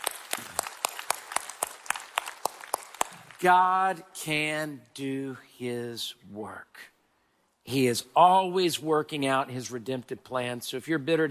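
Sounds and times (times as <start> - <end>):
audience clapping: 0.0 - 4.0
speech: 3.4 - 6.9, 7.6 - 11.2.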